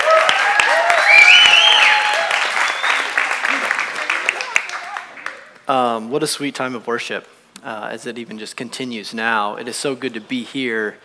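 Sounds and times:
scattered cheers and whoops: 0:00.0 - 0:05.0
room full of people applauding: 0:00.0 - 0:05.6
speech: 0:05.7 - 0:11.0.

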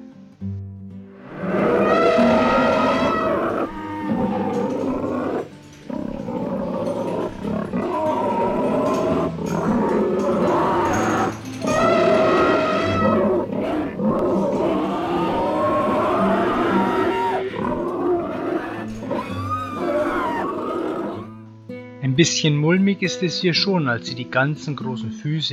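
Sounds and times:
chorus of many animal calls and roars: 0:01.2 - 0:21.4
speech: 0:22.2 - 0:25.5.

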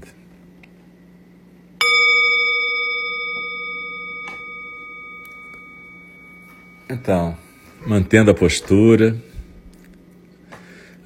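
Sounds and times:
faint hum: 0:00.0 - 0:11.0
meditation bell ringing: 0:01.8 - 0:09.4
speech: 0:06.9 - 0:09.3.

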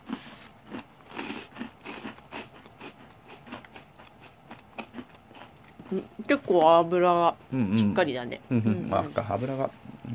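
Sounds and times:
crunching on an espresso cinnamon rusk: 0:00.0 - 0:06.3
speech: 0:05.9 - 0:10.1.

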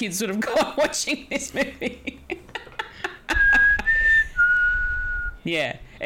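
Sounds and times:
speech: 0:00.0 - 0:02.3, 0:05.5 - 0:06.0
laughter: 0:00.4 - 0:04.2
low rumbling backdrop: 0:03.3 - 0:05.4
thin sustained eerie whistled tone: 0:03.3 - 0:05.4.

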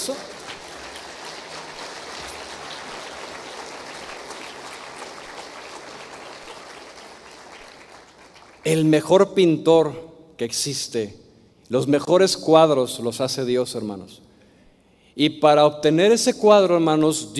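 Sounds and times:
worship audience clapping: 0:00.0 - 0:09.0
speech: 0:08.6 - 0:14.2, 0:15.2 - 0:17.3.

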